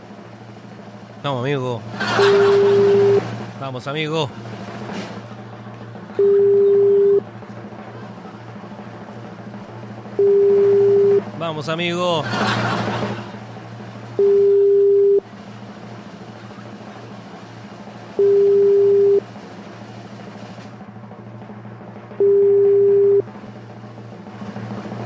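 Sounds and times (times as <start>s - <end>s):
low hum: 0.0s - 25.0s
speech: 1.2s - 4.6s, 11.5s - 12.9s
laughter: 2.0s - 3.2s, 11.9s - 13.8s
voice call ringback tones: 2.2s - 3.2s, 6.2s - 7.2s, 10.2s - 11.2s, 14.2s - 15.2s, 22.2s - 23.3s.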